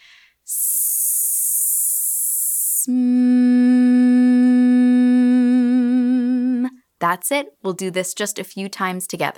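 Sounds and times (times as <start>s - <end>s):
person hissing in a vocal exercise: 0.0s - 2.9s
person humming a long even tone in a vocal exercise: 0.5s - 6.7s
speech: 2.8s - 3.2s, 7.0s - 9.3s.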